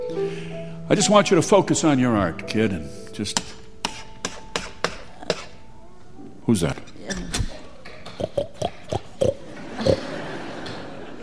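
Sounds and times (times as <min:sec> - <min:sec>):
speech: 0:00.0 - 0:03.6, 0:06.5 - 0:07.3
pig oinking: 0:07.5 - 0:10.0
laughter: 0:09.2 - 0:11.2.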